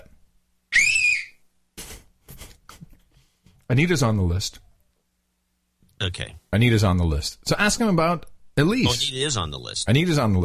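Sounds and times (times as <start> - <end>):
person giving a loud piercing whistle to call someone: 0.7 - 1.4
speech: 3.7 - 4.7, 6.1 - 10.4.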